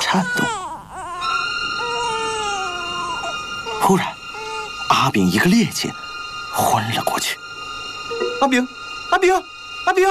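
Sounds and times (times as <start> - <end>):
baby crying: 0.0 - 5.0
speech: 0.1 - 0.6, 3.9 - 4.2, 4.9 - 6.0, 6.6 - 7.5, 8.2 - 10.0.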